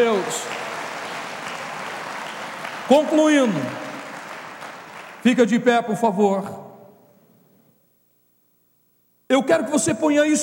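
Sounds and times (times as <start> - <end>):
crowd applauding: 0.0 - 5.6
speech: 2.9 - 3.8, 5.2 - 6.6, 9.3 - 10.4.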